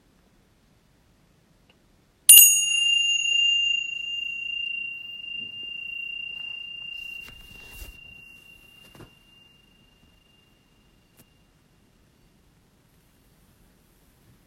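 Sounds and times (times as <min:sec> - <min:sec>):
meditation bell struck at the end of a meditation practice: 0:02.3 - 0:11.1.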